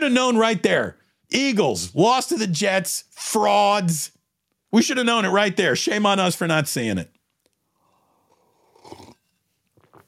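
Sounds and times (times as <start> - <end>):
speech: 0.0 - 7.2
person sipping a drink: 7.4 - 10.0.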